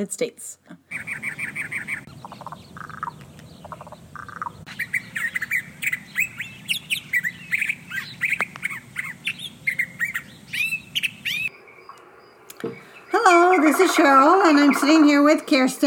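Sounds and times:
speech: 0.0 - 1.2, 13.6 - 15.8
backyard birds chirping, trilling and squawking: 0.9 - 15.8
low steady hum: 11.3 - 15.8.

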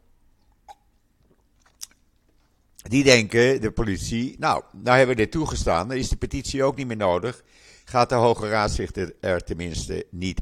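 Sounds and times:
person sipping water: 0.5 - 2.8
speech: 2.9 - 10.4.

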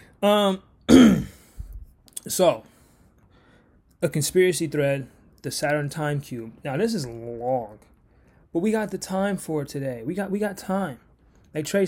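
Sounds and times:
speech: 0.2 - 1.3, 2.2 - 2.7, 4.0 - 7.9, 8.5 - 11.8
person clearing throat with a buzzy, gravelly rasp: 0.9 - 1.5.

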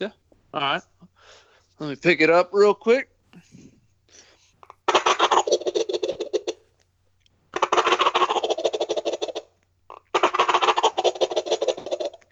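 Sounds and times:
speech: 0.0 - 4.2
shaken Flextone Thunder Gobble turkey call rattling gobbles: 4.9 - 6.6, 7.6 - 12.3.

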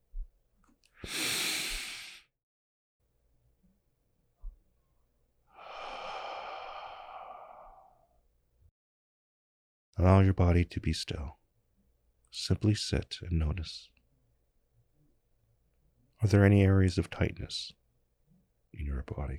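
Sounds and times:
deep human breath with exhale through the mouth: 1.0 - 2.3, 5.5 - 8.2
speech: 10.0 - 11.4, 12.4 - 13.9, 16.2 - 17.8, 18.8 - 19.3.

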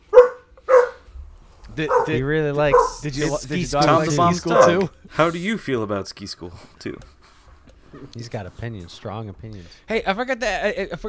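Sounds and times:
dog barking sharply: 0.0 - 1.1, 1.8 - 3.0, 4.5 - 4.8
speech: 1.8 - 7.2, 7.9 - 11.0.

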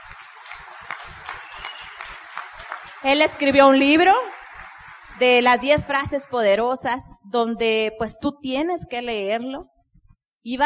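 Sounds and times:
crowd applauding: 0.0 - 6.8
speech: 3.0 - 4.3, 5.2 - 9.7, 10.4 - 10.6.

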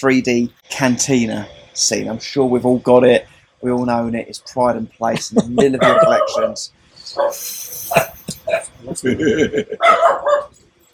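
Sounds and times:
speech: 0.0 - 10.6
laughter: 5.0 - 6.5, 7.3 - 9.9
dogs barking yippy and deep: 5.8 - 6.6, 7.2 - 8.3, 9.8 - 10.6.

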